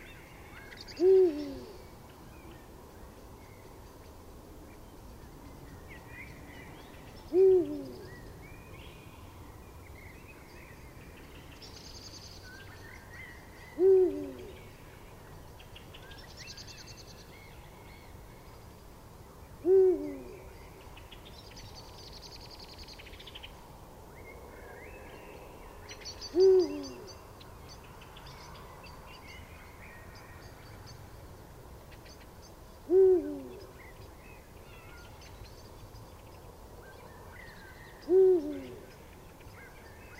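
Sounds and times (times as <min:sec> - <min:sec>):
Eurasian eagle owl calling in Landshut: 0:00.6 - 0:01.8, 0:07.3 - 0:08.1, 0:13.7 - 0:14.6, 0:19.7 - 0:20.5, 0:26.2 - 0:27.2, 0:32.9 - 0:33.7, 0:38.1 - 0:38.9.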